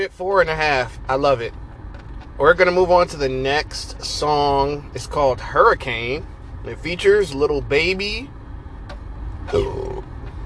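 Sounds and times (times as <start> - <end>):
speech: 0.0 - 1.6, 2.4 - 8.4, 9.5 - 9.9
faint rumbling background: 0.0 - 10.4
single short voiced burp: 9.5 - 10.0.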